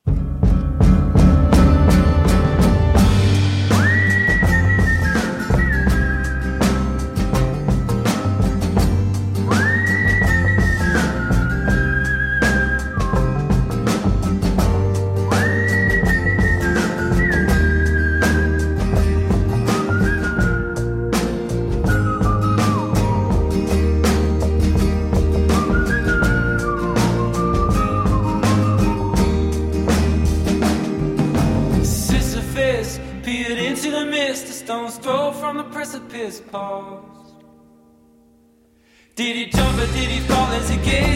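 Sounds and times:
pop backing of bass and drums: 0.0 - 35.4, 39.4 - 41.1
man whistling a rising sliding melody: 3.6 - 7.6, 9.4 - 30.3.

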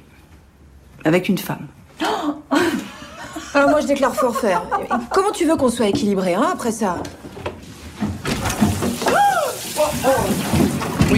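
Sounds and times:
speech: 1.0 - 1.8, 3.6 - 7.2
laughter: 2.5 - 5.3
shower running in a film scene: 8.0 - 11.1.

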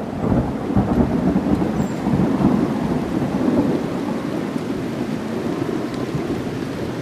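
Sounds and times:
steady heavy rain: 0.0 - 7.0
thunder rumbling: 0.0 - 7.0.

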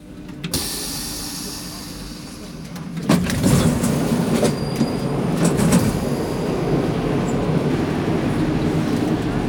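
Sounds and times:
metro train rumbling: 0.0 - 9.4
high squeal of metro train wheels on rails: 4.2 - 7.5.

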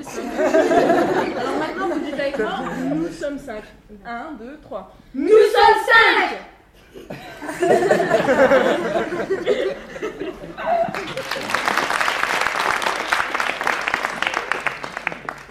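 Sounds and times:
audience laughing: 0.0 - 3.1, 6.9 - 12.0
speech: 2.4 - 11.8
audience cheering: 10.6 - 15.4.

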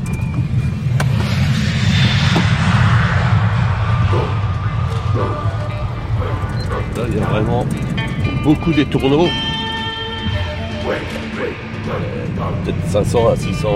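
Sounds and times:
faint broadband roar: 0.0 - 13.7
low engine drone of an airplane passing overhead: 0.0 - 13.7
speech: 7.4 - 9.6, 11.9 - 13.7.

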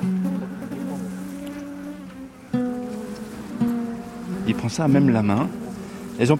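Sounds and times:
honeybees buzzing around an opened beehive: 0.0 - 6.3
speech: 4.5 - 5.6, 6.2 - 6.3.

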